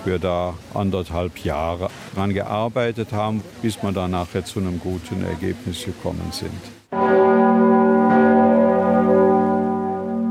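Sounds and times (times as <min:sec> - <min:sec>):
speech: 0:00.0 - 0:07.8
large cathedral bell ringing: 0:06.9 - 0:10.3.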